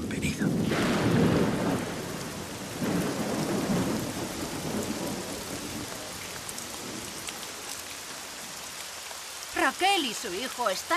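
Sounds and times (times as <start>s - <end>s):
low rolling thunder: 0.0s - 8.6s
heavy rain: 0.0s - 10.9s
speech: 9.7s - 10.9s.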